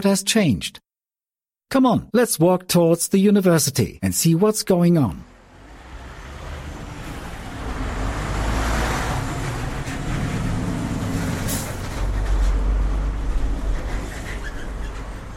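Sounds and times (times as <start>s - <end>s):
speech: 0.0s - 0.8s, 1.7s - 5.3s
street traffic rumbling: 5.2s - 15.3s.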